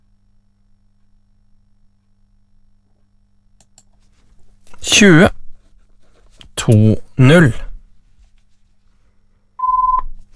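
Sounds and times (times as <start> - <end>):
speech: 4.8 - 5.4, 6.6 - 7.7
short electronic telephone tone: 9.6 - 10.2.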